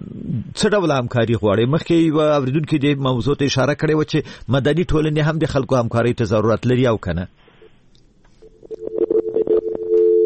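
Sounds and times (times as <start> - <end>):
speech: 0.6 - 7.4
steady electronic tone of a disconnected phone line: 8.4 - 10.2.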